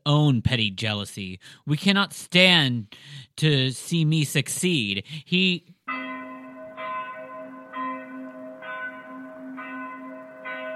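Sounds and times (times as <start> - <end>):
speech: 0.1 - 5.7
distant warning bells ringing in alarm near city walls: 5.9 - 10.7.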